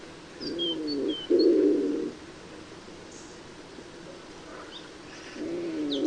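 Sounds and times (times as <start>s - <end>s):
common wood pigeon cooing: 0.4s - 2.2s, 4.1s - 6.0s.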